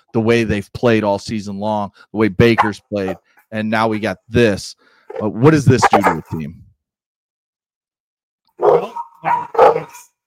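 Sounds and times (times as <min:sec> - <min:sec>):
speech: 0:00.1 - 0:06.6, 0:08.7 - 0:10.1
dog barking excitedly: 0:08.6 - 0:10.2.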